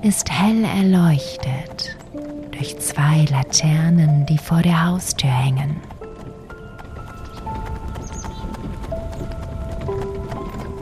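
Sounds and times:
speech: 0.0s - 2.0s, 2.6s - 6.0s
hooves of a horse-drawn carriage clip-clopping: 0.0s - 10.8s.

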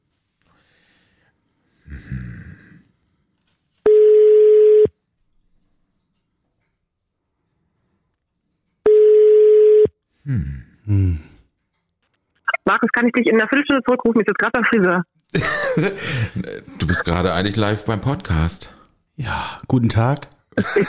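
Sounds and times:
outgoing call ringback tone beeps: 3.9s - 4.9s, 8.9s - 9.9s
speech: 13.0s - 20.8s
laughter: 15.3s - 17.3s, 20.5s - 20.8s.

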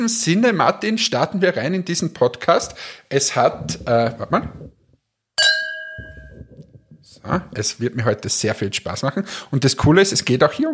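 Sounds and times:
speech: 0.0s - 4.8s, 7.2s - 10.7s
wine glasses clinking in a toast: 5.4s - 6.7s.

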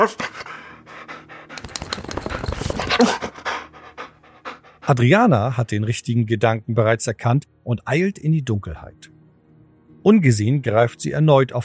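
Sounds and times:
speech: 0.0s - 0.5s, 3.0s - 3.3s, 4.9s - 9.2s, 10.0s - 11.6s
dog panting rapidly: 0.0s - 5.2s.

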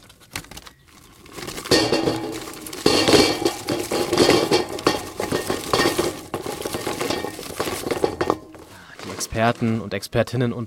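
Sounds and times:
rustling while firing up a barbecue grill: 0.0s - 10.2s
metallic clinking and clattering of a barbecue grill being fired up: 0.9s - 9.4s
speech: 9.4s - 10.6s.

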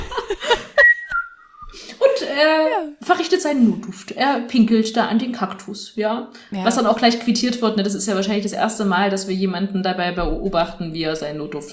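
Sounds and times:
laughter: 0.0s - 1.2s
person whistling a cheerful tune: 0.8s - 1.8s
short bursts of vocal sounds: 2.1s - 3.8s
speech: 2.4s - 11.7s.

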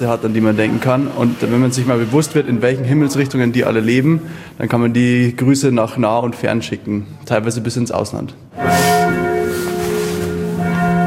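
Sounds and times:
speech: 0.0s - 9.2s
church tower bell above Marienplatz striking the hour: 8.5s - 11.0s.

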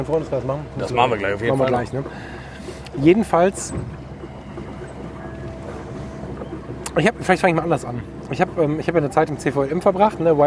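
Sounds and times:
speech: 0.0s - 2.4s, 3.0s - 4.0s, 7.0s - 10.4s
boat on open water with steady low rumble: 0.0s - 10.4s
gusts of wind buffeting the microphone: 0.0s - 10.4s
lapping water on a lake: 0.2s - 10.4s.

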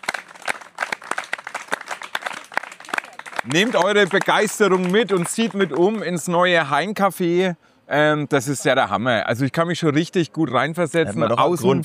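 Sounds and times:
applause from an audience at a live event: 0.0s - 6.3s
speech: 3.4s - 11.8s.

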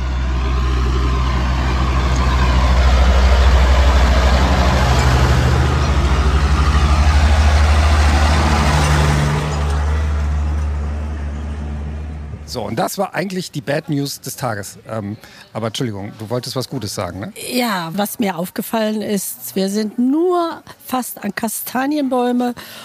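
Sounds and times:
several cars passing on an expressway: 0.0s - 12.8s
speech: 12.6s - 22.8s.

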